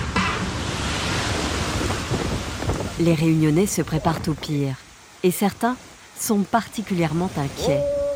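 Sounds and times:
strong cyclone wind blowing outside: 0:00.0 - 0:04.5
wind buffeting against the microphone: 0:01.0 - 0:04.6
speech: 0:03.0 - 0:08.0.

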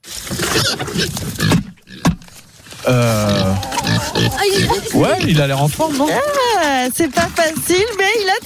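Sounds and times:
pig grunting and snorting excitedly before being fed: 0:00.2 - 0:08.0
speech: 0:00.3 - 0:01.5, 0:02.9 - 0:03.3, 0:04.5 - 0:08.4
pig squealing drawn-out before being fed: 0:00.3 - 0:06.6.

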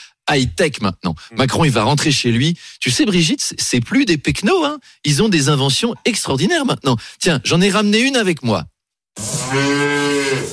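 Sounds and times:
speech: 0:00.3 - 0:10.5
cow mooing: 0:09.2 - 0:10.5.

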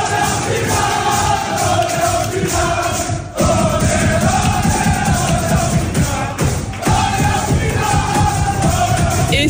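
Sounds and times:
football players shouting and cheering in a locker room: 0:00.0 - 0:09.4.

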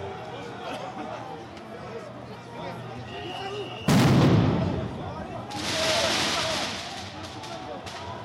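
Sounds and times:
murmuring crowd at a street protest: 0:00.0 - 0:08.2
street noise: 0:00.0 - 0:08.2
firecracker exploding during street protest: 0:03.9 - 0:08.1.

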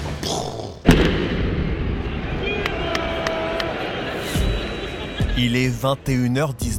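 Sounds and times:
speech: 0:00.2 - 0:00.9, 0:05.4 - 0:06.7
explosion: 0:00.8 - 0:02.4
large crowd roaring, murmuring and cheering: 0:00.9 - 0:06.6
faint whistles: 0:03.8 - 0:05.4.

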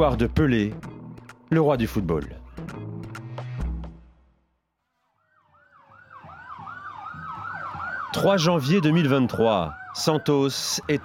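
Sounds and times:
speech: 0:00.0 - 0:00.9, 0:01.5 - 0:02.4, 0:08.2 - 0:11.0
fire truck siren wailing in city streets of Santos, São Paulo state, Brazil: 0:05.0 - 0:11.0.

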